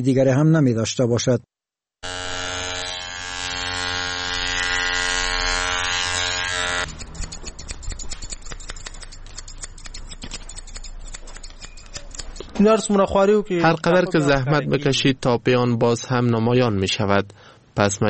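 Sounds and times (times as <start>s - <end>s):
speech: 0.0s - 1.5s, 12.6s - 18.0s
electric hair clipper buzzing: 2.0s - 8.5s
scissors cutting schoolchildren's hair in a barbershop in Kabul: 6.2s - 12.9s.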